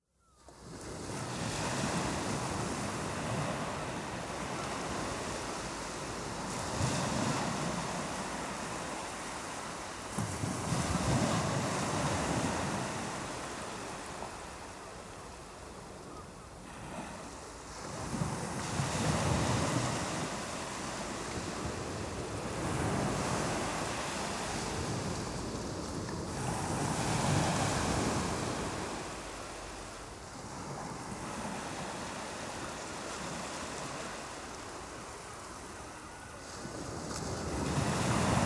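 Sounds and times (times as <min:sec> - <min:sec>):
waves on the English coast: 0:00.4 - 0:38.4.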